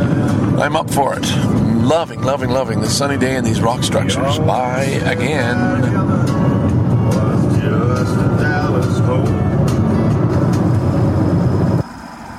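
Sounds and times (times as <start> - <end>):
road traffic rumbling: 0.0 - 12.3
speech: 0.6 - 6.4
indistinct voices: 0.6 - 9.9.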